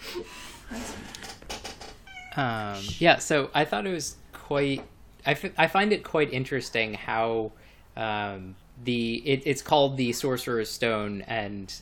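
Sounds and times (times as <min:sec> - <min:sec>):
cat meowing: 0:02.0 - 0:02.8
speech: 0:02.4 - 0:11.8.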